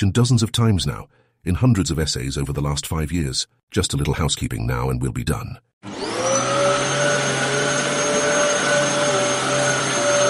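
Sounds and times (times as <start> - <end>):
speech: 0.0 - 6.3
vacuum cleaner running: 5.8 - 10.2.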